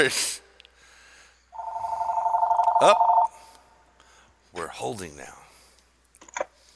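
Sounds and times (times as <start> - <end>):
speech: 0.0 - 0.4, 2.8 - 3.1, 4.6 - 5.4
telephone ringing with a bright electronic trill: 1.6 - 3.3.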